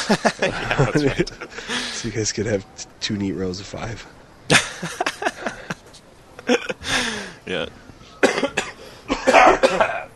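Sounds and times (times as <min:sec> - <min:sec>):
laughter: 0:00.0 - 0:02.1, 0:04.5 - 0:07.4
speech: 0:00.1 - 0:05.2, 0:06.9 - 0:07.8
harsh coughs: 0:08.2 - 0:10.1.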